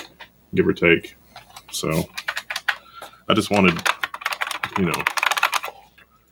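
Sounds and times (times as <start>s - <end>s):
speech: 0.5s - 2.2s, 3.3s - 3.9s, 4.8s - 5.2s
typing on a Japanese buckling spring keyboard: 2.1s - 5.7s.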